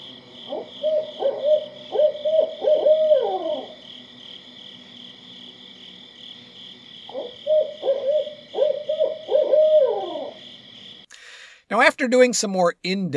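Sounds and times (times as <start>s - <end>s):
steady high insect drone: 0.0s - 11.4s
barred owl hooting call: 0.3s - 4.0s, 7.1s - 10.6s
speech: 12.0s - 13.1s.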